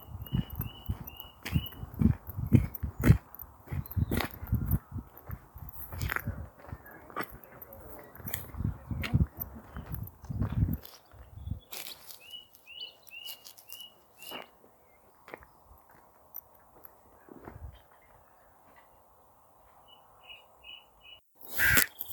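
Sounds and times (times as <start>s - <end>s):
skylark chirping outdoors: 0.0s - 14.5s, 19.9s - 22.1s
crunching footsteps: 0.0s - 18.9s
crow calling outdoors: 21.4s - 22.1s.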